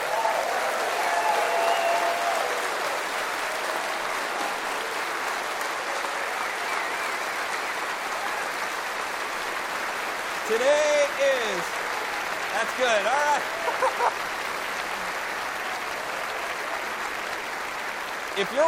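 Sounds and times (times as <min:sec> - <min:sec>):
standing audience clapping: 0:00.0 - 0:18.6
speech: 0:10.5 - 0:11.6, 0:12.6 - 0:14.3, 0:18.4 - 0:18.6
laughter: 0:12.7 - 0:14.4.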